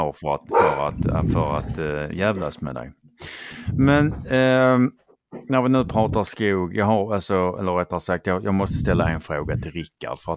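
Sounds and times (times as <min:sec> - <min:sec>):
speech: 0:00.0 - 0:10.3
dog barking: 0:00.5 - 0:01.0.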